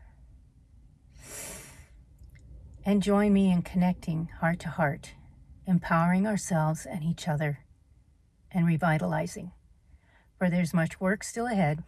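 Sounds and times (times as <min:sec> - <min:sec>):
deep breath drawn during a guided pause: 0:01.1 - 0:02.0, 0:09.8 - 0:10.4
speech: 0:02.9 - 0:07.6, 0:08.5 - 0:09.6, 0:10.4 - 0:11.8.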